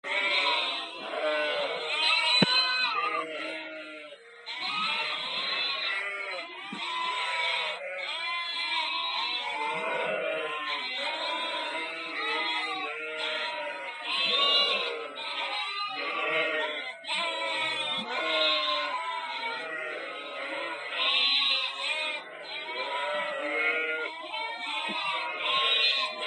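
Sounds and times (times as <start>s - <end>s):
flock of sheep bleating: 0.0s - 26.2s.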